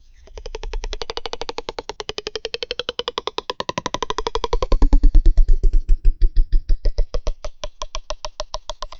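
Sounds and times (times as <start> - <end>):
cartoon spring bouncing and stretching: 0.0 - 8.9.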